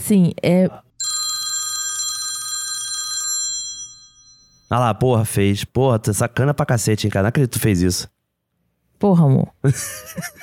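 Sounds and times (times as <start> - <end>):
speech: 0.0 - 0.9, 4.7 - 8.2, 9.0 - 10.4
iPhone alarm with old-style telephone bell ringtone: 1.0 - 4.8.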